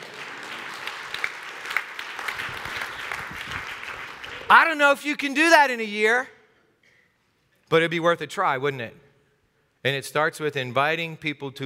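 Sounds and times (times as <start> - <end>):
church audience applauding during a service: 0.0 - 4.8
speech: 4.5 - 6.4, 7.7 - 9.0, 9.8 - 11.6.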